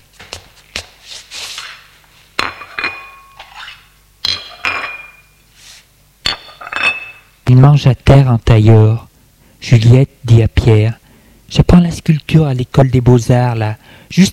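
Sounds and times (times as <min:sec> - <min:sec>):
plates and cutlery clinking as each person takes a plate: 0:02.4 - 0:05.3, 0:06.3 - 0:07.3
speech: 0:07.5 - 0:14.3.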